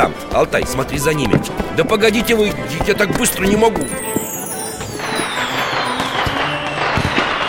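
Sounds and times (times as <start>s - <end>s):
speech: 0.0s - 4.2s
fireworks crackling and popping: 1.3s - 7.4s
faint descending firework whistle: 3.8s - 7.4s
sharper firework bangs: 3.9s - 7.4s.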